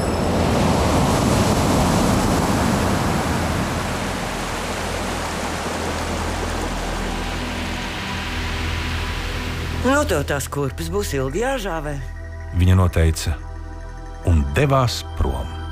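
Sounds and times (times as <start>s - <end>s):
large ocean wave washing over sand: 0.0s - 9.9s
speech: 10.1s - 13.5s, 14.2s - 15.6s.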